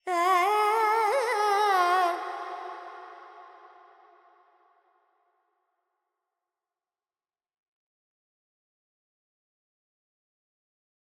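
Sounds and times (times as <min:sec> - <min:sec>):
Carnatic woman singing vocal alap in raga Purvi Kalyani: 0:00.0 - 0:03.6.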